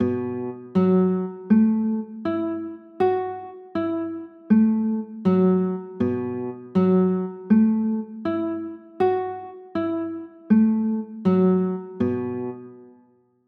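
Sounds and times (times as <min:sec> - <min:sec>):
B 7sus4 chords: 0:00.0 - 0:13.0.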